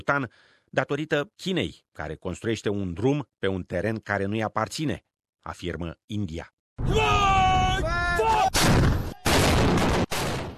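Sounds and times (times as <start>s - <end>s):
speech: 0.0s - 7.3s
heavy live-fire artillery blasts during Chinese military exercises: 8.5s - 10.5s.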